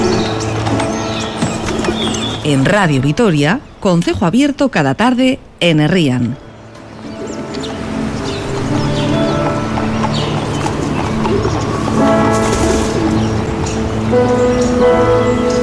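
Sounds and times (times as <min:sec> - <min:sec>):
horse hooves clip-clopping: 0:00.0 - 0:02.6, 0:07.5 - 0:13.8
outdoor noise: 0:00.0 - 0:15.6
speech: 0:02.5 - 0:06.4.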